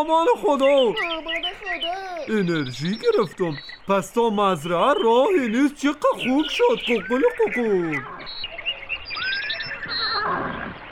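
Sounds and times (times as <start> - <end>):
speech: 0.0 - 8.5
horse neighing in a high-pitched whinny: 9.2 - 10.9.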